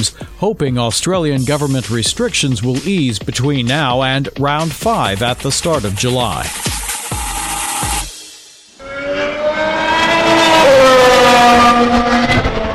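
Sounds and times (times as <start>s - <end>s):
speech: 0.0s - 6.8s
Formula One race car engine revving: 8.8s - 12.7s.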